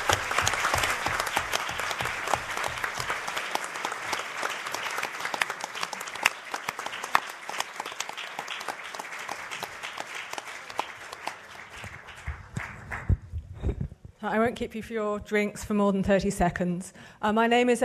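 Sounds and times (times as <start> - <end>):
roomful of people applauding: 0.0 - 13.7
speech: 14.3 - 17.8.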